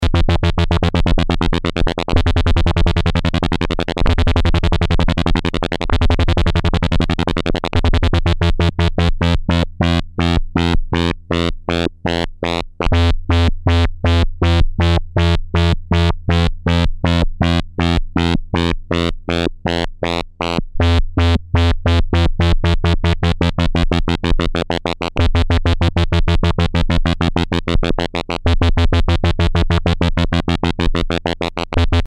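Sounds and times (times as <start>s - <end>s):
synthesizer LFO modulation: 0.0s - 32.0s.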